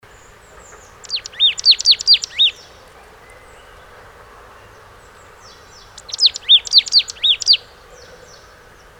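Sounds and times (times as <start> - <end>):
marsh tit calling: 1.0 - 2.8, 6.0 - 7.6.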